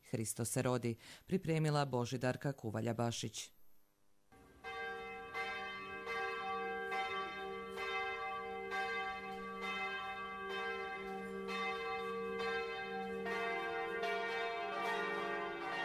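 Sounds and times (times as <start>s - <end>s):
speech: 0.1s - 3.6s
church bells pealing at midnight: 4.4s - 15.8s.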